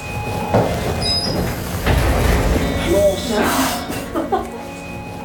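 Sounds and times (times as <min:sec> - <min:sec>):
mechanical sliding rumble: 0:00.0 - 0:03.4
laughter: 0:03.4 - 0:04.8.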